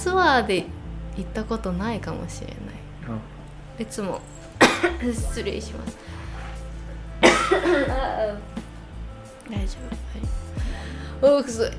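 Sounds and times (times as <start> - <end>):
speech: 0.0 - 6.1, 7.7 - 8.6, 9.5 - 10.4, 11.2 - 11.7
person feeling unwell coughing harshly: 4.6 - 5.1, 7.2 - 8.2.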